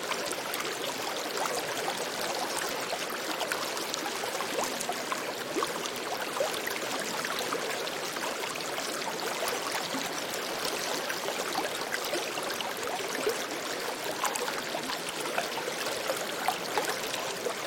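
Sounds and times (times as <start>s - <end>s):
gentle river water trickling and splashing: 0.0s - 17.6s.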